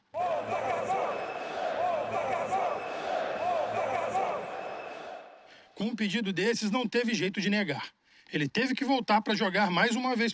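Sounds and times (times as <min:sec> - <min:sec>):
football supporters chanting and roaring in the stands at Pacaembu stadium: 0:00.0 - 0:05.4
speech: 0:05.8 - 0:10.3.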